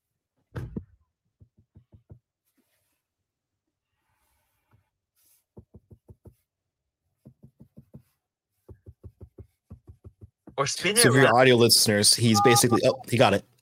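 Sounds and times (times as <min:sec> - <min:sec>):
fingertips tapping on a touchscreen: 0:05.5 - 0:06.4, 0:07.2 - 0:10.6
speech: 0:10.6 - 0:13.5.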